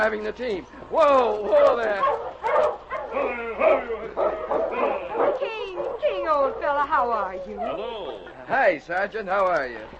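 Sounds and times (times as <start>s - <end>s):
speech: 0.0s - 9.9s
big silver-gray dog barking and whimpering excitedly: 1.4s - 8.3s.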